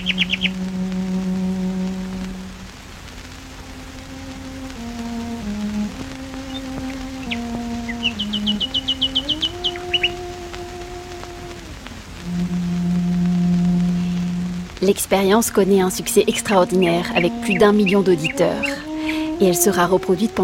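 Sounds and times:
nightingales singing outdoors: 0.0 - 0.8, 6.4 - 10.3, 15.8 - 20.4
speech: 0.0 - 0.9, 14.8 - 20.4
cello playing slow sustained melody: 0.0 - 20.4
soft outdoor ambient background: 0.0 - 20.4.

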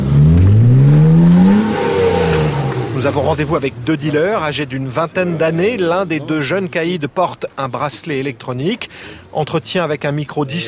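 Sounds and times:
black BMW revving hard while drifting in an industrial car park: 0.0 - 5.0
speech: 3.1 - 10.6.

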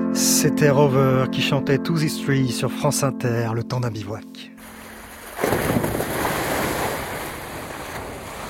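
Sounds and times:
speech: 0.2 - 4.5
sea water washing along the hull of a slow-moving boat: 4.6 - 8.4.

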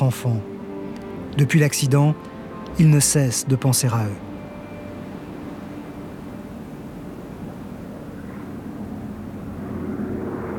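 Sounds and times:
speech: 0.0 - 0.5, 1.4 - 4.3
jet aircraft engine roaring overhead: 4.7 - 10.5.

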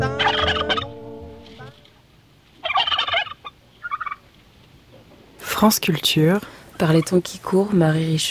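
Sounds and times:
turkey gobbling in rattling bursts: 0.2 - 1.9, 2.6 - 4.4
speech: 5.6 - 8.2.

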